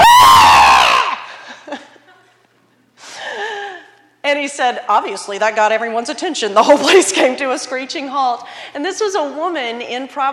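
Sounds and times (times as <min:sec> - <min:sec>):
voice imitating a guttural joyful scream of a woman: 0:00.0 - 0:01.3
speech: 0:04.5 - 0:10.3.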